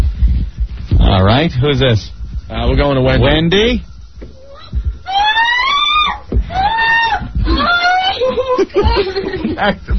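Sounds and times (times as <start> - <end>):
speech: 1.3 - 3.9, 9.0 - 9.9
long loud high-pitched screaming: 4.4 - 8.6
laughter: 7.4 - 9.9.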